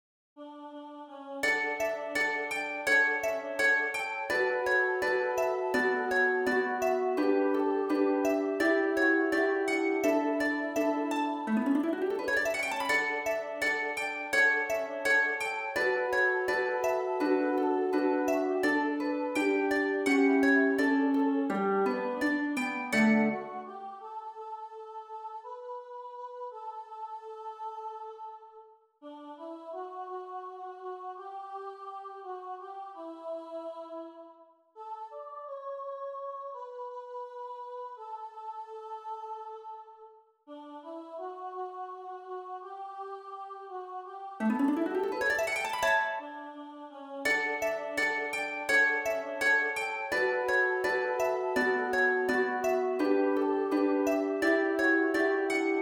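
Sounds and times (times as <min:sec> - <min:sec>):
harp playing: 0:02.2 - 0:23.8, 0:44.4 - 0:46.4, 0:47.3 - 0:55.7.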